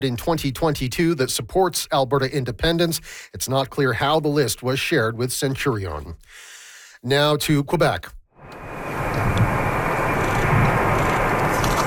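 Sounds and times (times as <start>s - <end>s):
speech: 0.0s - 8.2s
passenger plane engines roaring while landing at the airport in Bagotville: 8.4s - 11.8s.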